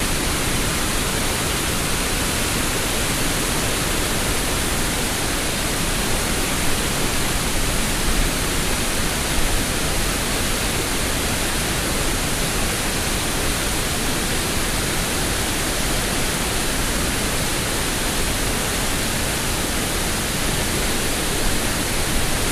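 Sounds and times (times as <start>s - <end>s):
large waterfall: 0.0s - 22.5s.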